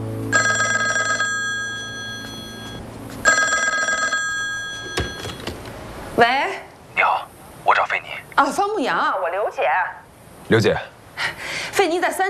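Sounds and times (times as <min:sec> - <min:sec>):
telephone ringing: 0:00.3 - 0:05.7
speech: 0:06.2 - 0:06.6, 0:08.4 - 0:12.2.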